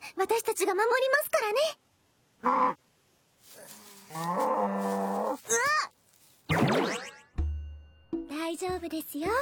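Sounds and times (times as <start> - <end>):
speech: 0.2 - 1.8, 2.4 - 2.8, 4.1 - 5.9, 8.4 - 9.3
cow mooing: 4.1 - 5.4.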